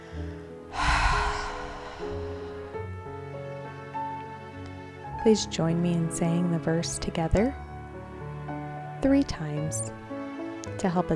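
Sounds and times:
deep inhale through the nose, exhale through the mouth: 0.0s - 3.2s
speech: 5.2s - 7.6s, 9.0s - 10.0s, 10.8s - 11.1s.

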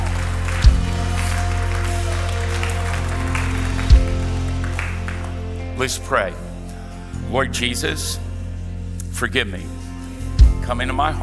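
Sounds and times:
audience cheering and applauding: 0.0s - 5.6s
speech: 5.8s - 6.4s, 7.3s - 8.2s, 9.2s - 9.8s, 10.7s - 11.2s.

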